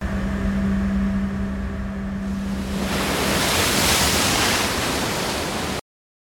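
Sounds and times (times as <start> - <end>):
steady low hum: 0.0 - 4.2
ocean surf waves: 2.2 - 5.8.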